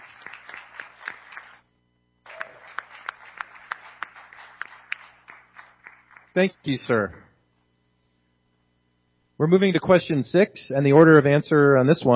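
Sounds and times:
crowd applauding: 0.0s - 1.6s, 2.2s - 7.3s
louder individual claps: 0.0s - 1.6s, 2.2s - 7.3s
speech: 6.4s - 7.2s, 9.4s - 12.1s.

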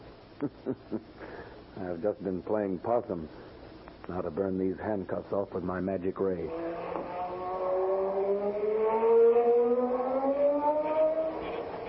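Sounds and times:
speech: 0.4s - 7.2s
car engine revving and accelerating away: 6.5s - 11.8s.

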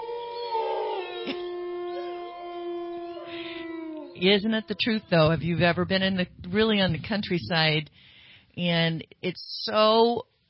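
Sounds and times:
wolf howling: 0.0s - 5.2s
speech: 4.2s - 10.3s.

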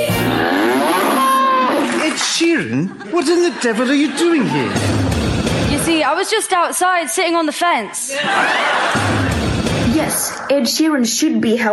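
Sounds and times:
cow mooing in a long drawn-out bellow: 0.2s - 1.4s
laughter: 0.2s - 5.4s, 8.0s - 9.7s
speech: 3.3s - 5.1s, 5.7s - 9.3s, 10.0s - 11.7s.

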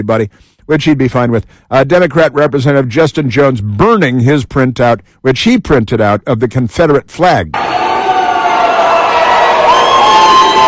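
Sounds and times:
speech: 0.0s - 7.7s
dense crowd shouting and jeering at the State House in Nashville: 7.6s - 10.6s
higher yells: 7.6s - 10.6s.

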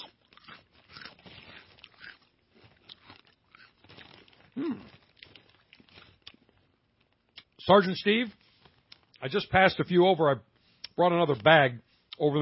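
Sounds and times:
chewing a crunchy cheese-flavored snack: 0.0s - 7.6s
speech: 4.6s - 4.9s, 7.7s - 8.4s, 9.2s - 12.4s.

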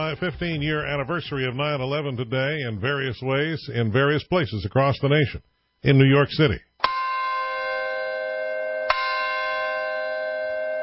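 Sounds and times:
speech: 0.0s - 6.7s
church bell ringing: 6.8s - 10.8s.

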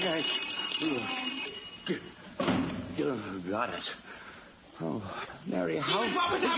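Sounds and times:
speech: 0.0s - 2.1s, 3.0s - 4.1s, 4.8s - 6.5s
alarm clock ringing with a high shrill tone: 0.0s - 2.2s.

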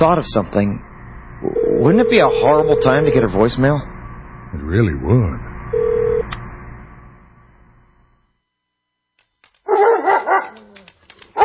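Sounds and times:
speech: 0.0s - 3.9s, 4.5s - 5.9s
dog barking: 9.7s - 10.7s
dog yipping: 9.7s - 11.4s.

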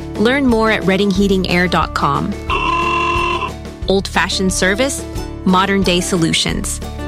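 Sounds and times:
speech: 0.2s - 2.5s, 3.9s - 6.9s
car horns honking: 2.5s - 3.5s.

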